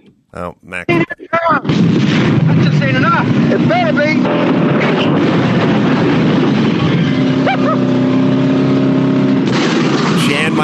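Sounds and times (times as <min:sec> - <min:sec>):
speech: 0:00.3 - 0:06.4, 0:10.3 - 0:10.6
rocket car engine roaring: 0:02.5 - 0:10.6.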